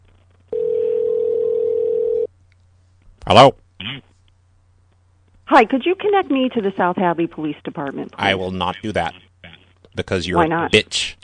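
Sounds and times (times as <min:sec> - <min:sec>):
faint low hum: 0:00.0 - 0:11.2
electronic ringback tone over a phone line: 0:00.5 - 0:02.3
speech: 0:03.3 - 0:03.6, 0:05.5 - 0:09.2, 0:10.0 - 0:11.2.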